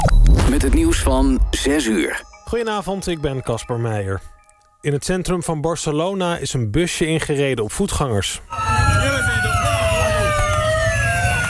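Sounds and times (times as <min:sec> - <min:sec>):
speech: 0:00.6 - 0:08.8
ambulance and police car sirens rushing past on the Ramblas in Barcelona: 0:08.5 - 0:11.4.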